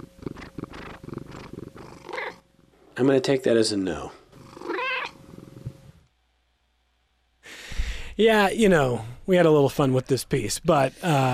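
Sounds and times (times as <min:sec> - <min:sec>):
cat chirping: 0:00.0 - 0:02.4, 0:04.6 - 0:05.2
cat purring: 0:00.0 - 0:02.4, 0:04.0 - 0:06.1
speech: 0:03.0 - 0:04.2, 0:08.2 - 0:11.3.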